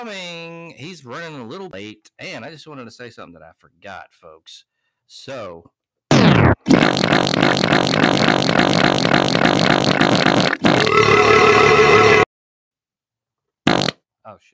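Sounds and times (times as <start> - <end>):
speech: 0.0 - 5.8, 6.6 - 10.6, 14.3 - 14.5
long fart sound effect from a button: 6.1 - 12.3, 13.7 - 14.0.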